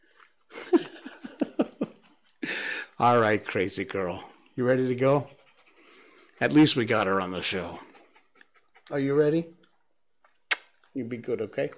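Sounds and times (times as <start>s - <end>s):
heavy female dog panting hard: 2.5s - 9.9s
speech: 3.0s - 5.4s, 6.4s - 7.9s, 8.9s - 9.6s, 11.0s - 11.7s.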